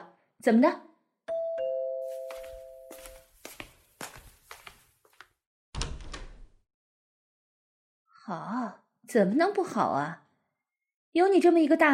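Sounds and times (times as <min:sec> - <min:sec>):
speech: 0:00.4 - 0:00.9, 0:08.3 - 0:10.2, 0:11.1 - 0:11.9
two-tone doorbell chime: 0:01.3 - 0:03.3
shuffling footsteps: 0:02.0 - 0:05.4.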